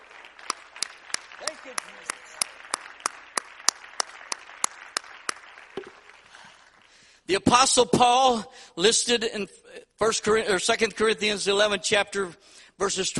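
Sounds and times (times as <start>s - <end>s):
soft crowd noise: 0.0s - 6.4s
audience clapping in unison: 0.0s - 7.2s
speech: 1.5s - 2.8s, 7.3s - 13.1s.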